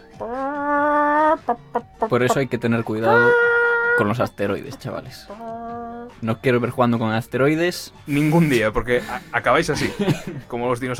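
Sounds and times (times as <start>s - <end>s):
chicken squawking and clucking: 0.1s - 6.2s
speech: 0.2s - 5.6s, 6.2s - 10.9s
laughter: 8.1s - 10.5s.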